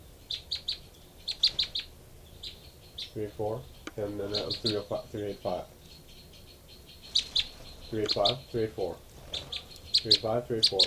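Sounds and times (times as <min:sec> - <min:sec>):
female and male birds trading high thin chirps: 0:00.0 - 0:10.8
speech: 0:03.2 - 0:05.8, 0:07.9 - 0:09.1, 0:10.0 - 0:10.8.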